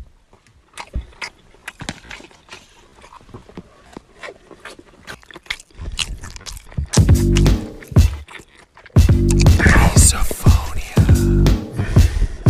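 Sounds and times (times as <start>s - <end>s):
wet chewing: 0.4s - 11.1s
crunchy clicks: 0.8s - 9.6s
lip smacking: 0.8s - 11.3s
low voiced grunts: 9.4s - 12.1s.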